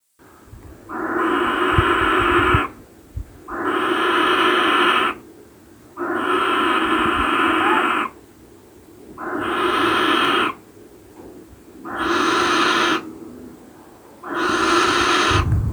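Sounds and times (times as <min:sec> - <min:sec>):
barn owl snore: 0:00.9 - 0:02.8, 0:03.5 - 0:05.2, 0:06.0 - 0:08.2, 0:09.2 - 0:10.6, 0:11.8 - 0:13.1, 0:14.2 - 0:15.5.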